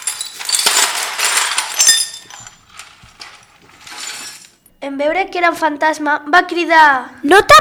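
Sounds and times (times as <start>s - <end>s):
brittle glass shards scraping and clinking on a hard floor: 0.0s - 4.6s
speech: 4.8s - 7.5s.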